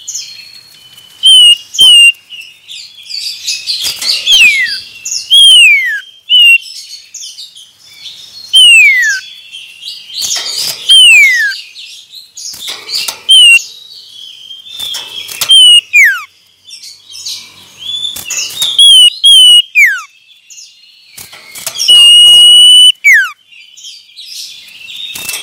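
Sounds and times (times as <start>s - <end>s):
male common iora singing descending whistled notes: 0.0s - 25.4s.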